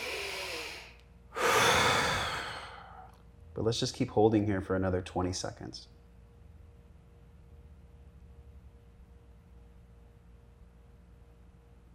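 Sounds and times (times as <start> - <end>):
quick forceful breath intake during a breath-retention hold in a breathing exercise: 0.0 - 3.1
speech: 3.6 - 6.0.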